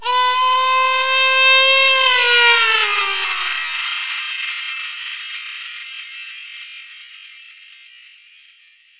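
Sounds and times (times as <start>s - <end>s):
baby crying: 0.0s - 3.7s.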